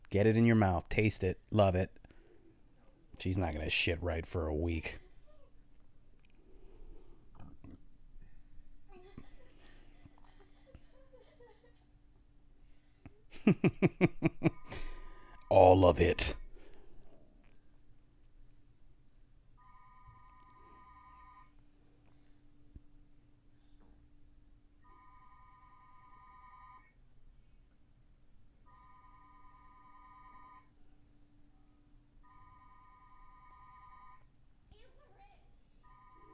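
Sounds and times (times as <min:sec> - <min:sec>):
speech: 0:00.1 - 0:02.0, 0:03.2 - 0:05.0, 0:13.4 - 0:14.6, 0:15.5 - 0:16.4
laughter: 0:08.9 - 0:12.0, 0:13.3 - 0:15.0
unconnected telephone ringing: 0:14.5 - 0:16.3, 0:19.6 - 0:21.8, 0:24.8 - 0:27.0, 0:28.6 - 0:30.9, 0:32.2 - 0:34.4, 0:35.8 - 0:36.3.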